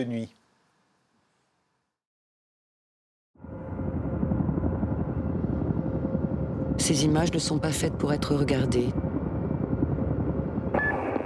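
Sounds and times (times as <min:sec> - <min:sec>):
speech: 0:00.0 - 0:00.4, 0:06.8 - 0:09.0
helicopter rotor chopping roar: 0:03.6 - 0:10.8.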